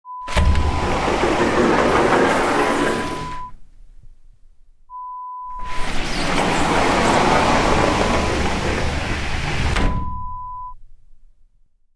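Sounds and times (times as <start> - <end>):
sliding door: 0.2 - 4.4, 5.5 - 10.8.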